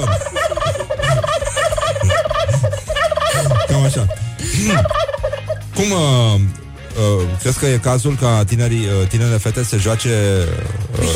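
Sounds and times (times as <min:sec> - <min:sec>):
laughter: 0:00.0 - 0:05.6
large flock of turkeys gobbling in unison: 0:00.0 - 0:05.7
speech: 0:04.0 - 0:05.1, 0:05.8 - 0:11.1.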